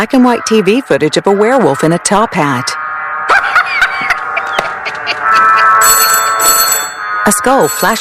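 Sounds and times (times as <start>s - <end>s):
speech: 0.0s - 3.5s, 7.2s - 7.9s
laughter: 3.3s - 5.8s
telephone ringing with electronic trill: 5.1s - 7.9s.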